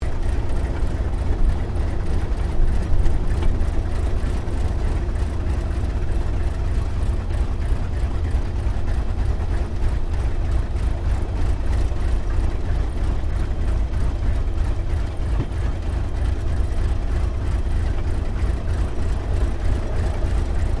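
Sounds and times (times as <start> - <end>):
T-28D Trojan aircraft taxiing, heard from the interior: 0.0 - 20.7.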